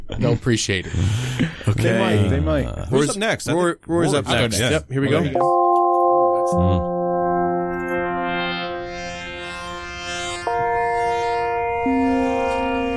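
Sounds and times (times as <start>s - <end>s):
speech: 0.1s - 5.6s, 6.5s - 6.9s
trippy video game soundtrack music with droning synth tones: 5.4s - 12.9s.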